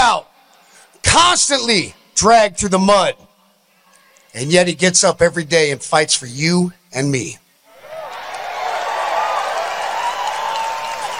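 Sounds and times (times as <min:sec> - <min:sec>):
speech: 0:01.1 - 0:03.3, 0:04.3 - 0:07.4
large crowd cheering and roaring at a rally: 0:07.7 - 0:11.1.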